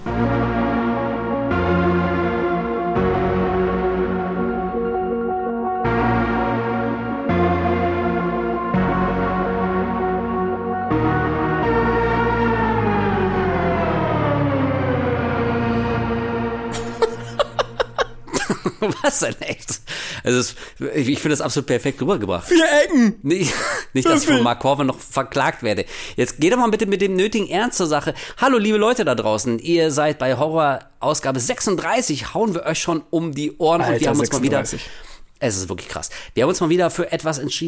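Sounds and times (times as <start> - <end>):
dense droning film score music with layered sustained tones: 0.0 - 18.7
laughter: 16.7 - 19.9, 23.4 - 24.5, 33.8 - 34.8
speech: 19.1 - 19.6, 20.2 - 37.6.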